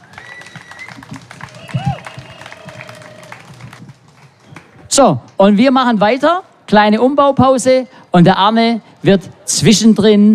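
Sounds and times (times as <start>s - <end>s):
whoops and whistle-like cheers: 0.0s - 3.5s
crowd applauding: 0.0s - 4.9s
speech: 5.0s - 10.3s.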